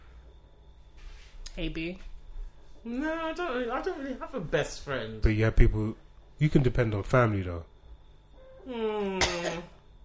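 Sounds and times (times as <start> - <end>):
speech: 1.6 - 2.1, 2.8 - 7.7, 8.6 - 9.7
throaty raspy cough: 9.2 - 9.8.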